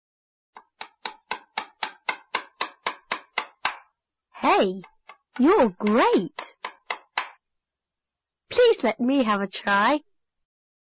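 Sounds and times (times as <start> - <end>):
hammer striking nails into a wooden chair: 0.6 - 3.9, 4.8 - 7.4
speech: 4.4 - 6.4, 8.8 - 10.1.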